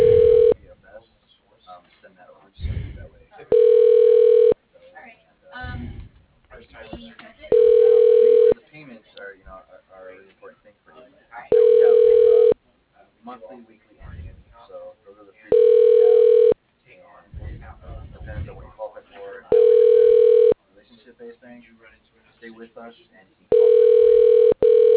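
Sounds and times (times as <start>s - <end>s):
telephone line tone while caller is on hold: 0.0s - 0.6s, 3.5s - 4.6s, 7.5s - 8.6s, 11.5s - 12.6s, 15.5s - 16.6s, 19.5s - 20.6s, 23.5s - 24.9s
talking over a phone line: 0.0s - 0.7s, 2.6s - 4.6s, 7.5s - 8.6s, 11.5s - 12.6s, 15.5s - 16.6s, 17.4s - 20.6s, 23.5s - 24.9s.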